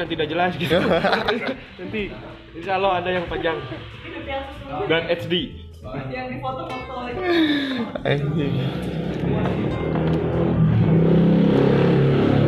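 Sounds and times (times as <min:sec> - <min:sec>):
speech: 0:00.0 - 0:09.9
laughter: 0:00.5 - 0:02.0
motorcycle engine revving: 0:08.5 - 0:12.4.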